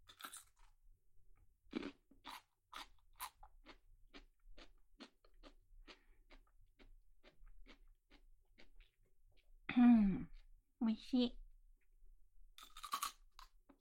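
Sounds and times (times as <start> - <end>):
biting and chewing a fresh cucumber: 0.1 - 0.7, 1.7 - 8.9, 12.6 - 13.5
speech: 11.0 - 11.4.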